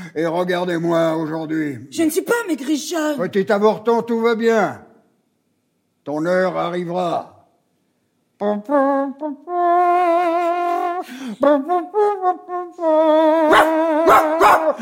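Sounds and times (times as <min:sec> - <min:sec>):
speech: 0:00.1 - 0:04.9, 0:06.1 - 0:07.3, 0:08.4 - 0:14.8
hunting dogs barking and baying: 0:13.5 - 0:14.8.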